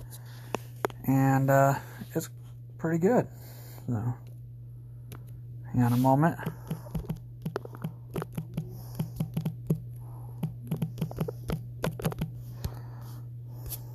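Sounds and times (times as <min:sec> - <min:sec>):
steady low electrical hum: 0:00.0 - 0:13.9
speech: 0:01.1 - 0:04.2, 0:05.7 - 0:06.8
typing a reply on a computer keyboard: 0:06.6 - 0:09.8, 0:10.4 - 0:12.3.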